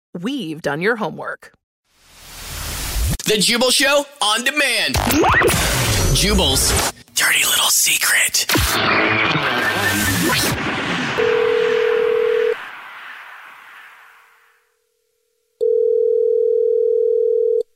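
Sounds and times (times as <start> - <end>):
speech: 0.2 - 1.6, 3.3 - 10.8
whooshing swell of telephone tones: 9.4 - 14.6
telephone line tone on a call placed back to a listener: 11.2 - 12.6, 15.6 - 17.7.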